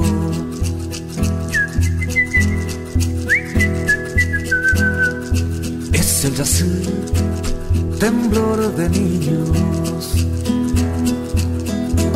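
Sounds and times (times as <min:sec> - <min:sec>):
steady rhythmic musical backing: 0:00.0 - 0:12.1
soft human whistle with long gliding tones: 0:01.5 - 0:05.4
speech: 0:06.4 - 0:07.3, 0:08.0 - 0:10.4.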